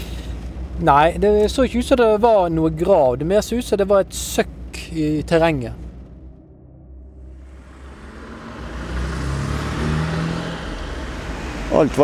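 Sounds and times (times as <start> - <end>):
speech: 0.8 - 5.8, 11.8 - 12.0
car passing on a road: 5.8 - 12.0.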